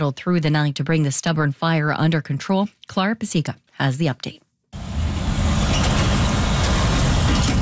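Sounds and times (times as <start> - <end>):
speech: 0.0 - 4.4
heavy trucks roaring past on a road: 4.8 - 7.6.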